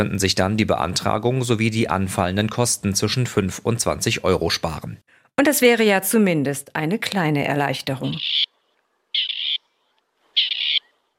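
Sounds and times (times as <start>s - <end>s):
speech: 0.0s - 8.5s
Grey Partridge harsh rasping call: 8.1s - 8.5s, 9.1s - 11.0s.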